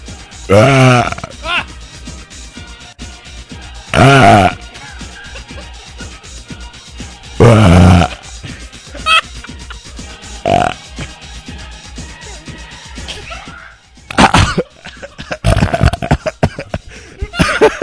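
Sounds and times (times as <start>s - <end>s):
loud drawn-out burps: 0.5s - 1.5s, 3.9s - 4.6s, 7.4s - 8.2s, 10.4s - 10.8s, 14.1s - 14.6s, 15.4s - 16.2s
laughter: 4.6s - 6.6s, 7.8s - 10.1s, 14.1s - 17.8s.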